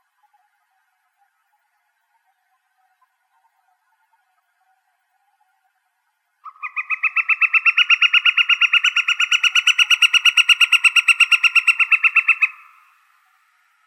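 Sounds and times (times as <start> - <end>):
woodpecker call in Arizona: 6.4 - 13.0.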